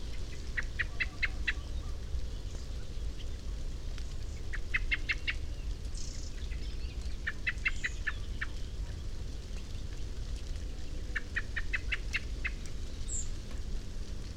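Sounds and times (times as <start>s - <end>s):
low background rumble: 0.0s - 14.3s
Common blackbird Turdus merula chinking calls: 0.1s - 3.4s, 4.3s - 9.0s, 11.1s - 13.3s.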